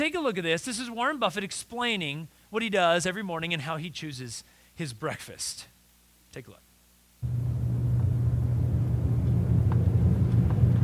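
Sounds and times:
speech: 0.0 - 5.7, 6.3 - 6.6
car engine hum during a short drive: 7.2 - 10.8
road noise during a short drive to the office: 7.2 - 10.8.

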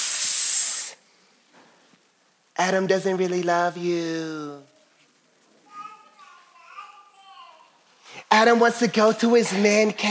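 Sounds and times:
person imitating a snake's hiss: 0.0 - 1.0
speech: 2.6 - 4.7, 8.4 - 10.1.

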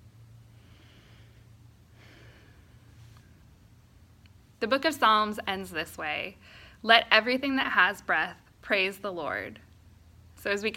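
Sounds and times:
steady low hum: 0.0 - 10.7
slow deep breaths during a guided breathing exercise: 0.4 - 3.6
speech: 4.6 - 9.6, 10.4 - 10.7.

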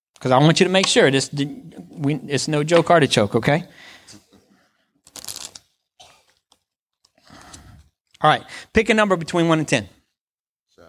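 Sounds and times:
speech: 0.2 - 4.2, 8.2 - 10.0
deck of playing cards being shuffled during a card trick: 5.1 - 5.7.

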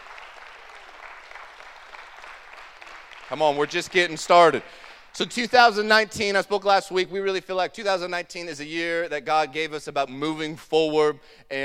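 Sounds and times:
large crowd applauding: 0.0 - 5.3
speech: 3.3 - 11.6.

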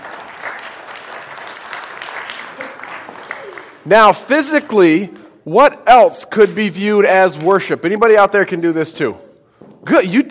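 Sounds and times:
audience applause: 0.0 - 3.8
speech: 3.9 - 9.2, 9.8 - 10.2.

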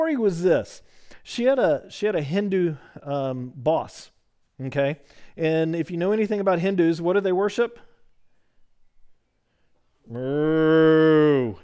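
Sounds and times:
speech: 0.0 - 7.9, 10.1 - 11.6
cow mooing: 10.1 - 11.6.

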